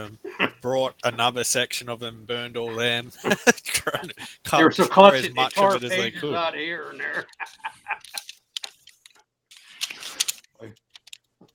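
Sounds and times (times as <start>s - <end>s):
speech: 0.0s - 7.7s, 10.6s - 10.8s
laughter: 2.6s - 8.3s
sustained paper shuffle: 4.8s - 6.2s, 7.2s - 11.5s
rustling and crinkling of paper pages being turned: 7.2s - 11.5s.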